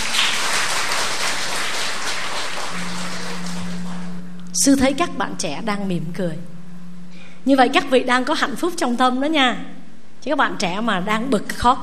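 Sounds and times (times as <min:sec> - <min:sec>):
large audience applause: 0:00.0 - 0:04.2
speech: 0:04.6 - 0:06.6, 0:07.4 - 0:11.8.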